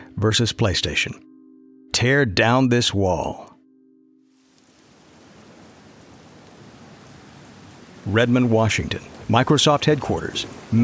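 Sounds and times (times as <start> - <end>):
speech: 0.2 - 1.3, 2.0 - 3.5, 8.1 - 10.8
heavy rain pouring: 4.3 - 10.8.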